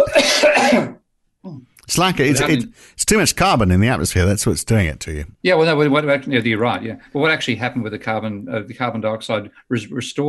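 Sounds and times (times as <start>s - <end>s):
harsh rasping cough: 0.0s - 1.0s
speech: 1.9s - 10.2s.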